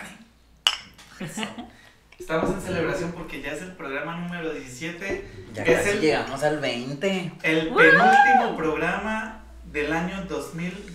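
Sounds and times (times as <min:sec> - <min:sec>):
glass bottles clinking in a toast: 0:00.6 - 0:01.0
speech: 0:01.2 - 0:10.9.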